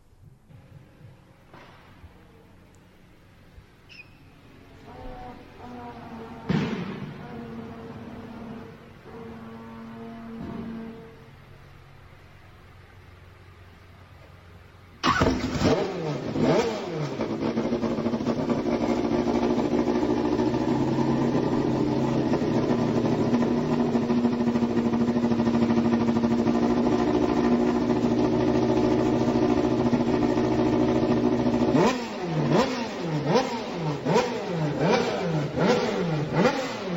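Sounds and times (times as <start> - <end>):
racing car engine with a silencer starting up and idling: 0.4 - 36.9.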